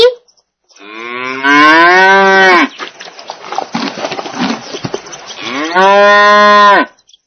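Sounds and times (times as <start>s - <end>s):
cow mooing: 0.8s - 2.8s, 5.4s - 6.9s.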